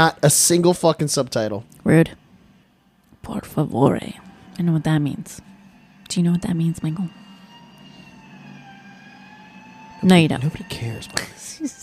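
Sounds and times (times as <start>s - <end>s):
speech: 0.0s - 2.2s, 3.2s - 5.5s, 6.1s - 7.2s, 10.0s - 11.8s
faint rumble of traffic: 0.0s - 11.8s
ambulance siren wailing: 3.2s - 11.8s.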